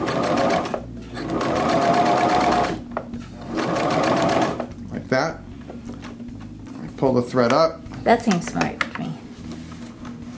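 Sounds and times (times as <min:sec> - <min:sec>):
sewing machine stitching in reverse: 0:00.0 - 0:02.8, 0:03.4 - 0:04.7
speech: 0:07.0 - 0:09.2.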